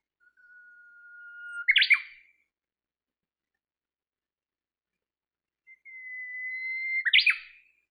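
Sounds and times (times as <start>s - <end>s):
Japanese bush warbler song: 0.0s - 2.6s, 5.0s - 7.8s.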